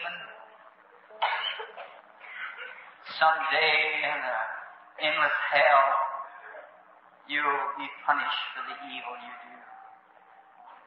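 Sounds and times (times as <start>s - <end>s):
small child with asthma coughing and choking: 1.2s - 2.8s
speech: 3.2s - 6.1s, 7.3s - 9.7s.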